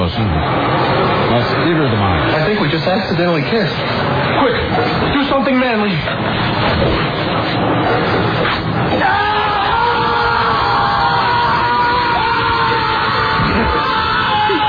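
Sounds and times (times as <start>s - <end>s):
noisy crowd-like background: 0.0s - 14.6s
speech: 2.7s - 9.5s
man screaming in a candy bar commercial: 9.0s - 14.6s.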